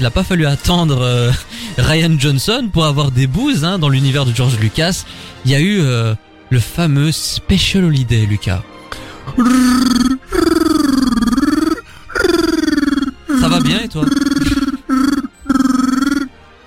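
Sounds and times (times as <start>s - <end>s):
speech: 0.0s - 8.7s, 9.3s - 10.2s, 13.6s - 14.6s
man's voice imitating Wookiee growls: 9.3s - 16.3s
laughter: 13.3s - 15.0s.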